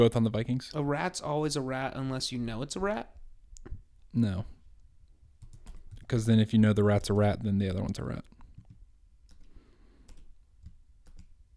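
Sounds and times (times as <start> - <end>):
speech: 0.0 - 3.2, 4.1 - 4.6, 6.1 - 8.3
typing on a computer keyboard: 5.4 - 6.1, 8.6 - 11.4.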